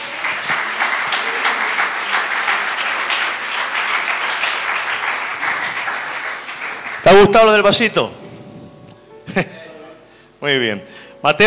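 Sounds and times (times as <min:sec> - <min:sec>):
congregation applauding: 0:00.0 - 0:08.1
speech: 0:07.0 - 0:08.2, 0:10.4 - 0:11.4.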